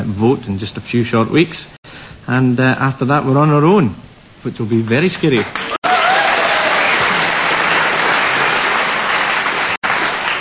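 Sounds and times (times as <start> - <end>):
speech: 0.1 - 5.6
audience applause: 5.4 - 10.3.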